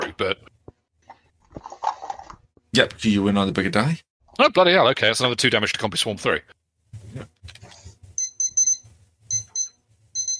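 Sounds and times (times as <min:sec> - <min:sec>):
speech: 0:00.2 - 0:00.5, 0:02.8 - 0:07.3
high-pitched electronic alarm beeps: 0:08.2 - 0:10.3.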